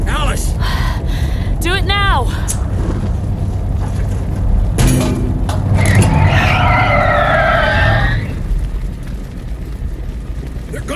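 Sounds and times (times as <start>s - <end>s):
car engine rumbling: 0.0s - 10.9s
car tires squealing as the vehicle skids to a halt: 2.5s - 8.9s.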